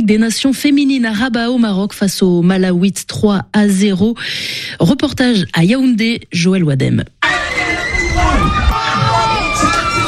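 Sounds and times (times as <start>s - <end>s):
speech: 0.0s - 7.2s
dense crowd shouting and cheering in jubilation: 7.2s - 10.0s.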